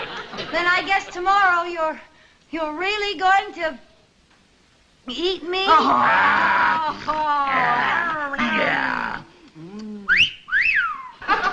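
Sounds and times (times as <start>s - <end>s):
laughter: 0.0s - 1.3s, 11.1s - 11.5s
speech: 0.5s - 3.9s, 5.0s - 9.1s
quick rising whistles: 10.1s - 11.2s.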